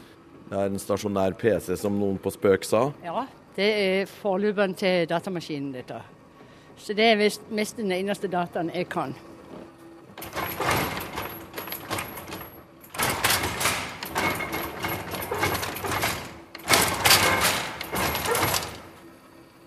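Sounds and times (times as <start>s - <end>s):
speech: 0.5s - 6.2s, 6.8s - 9.3s
jacquard punch-card loom shuttle of wood and metal banging back and forth: 10.2s - 19.0s.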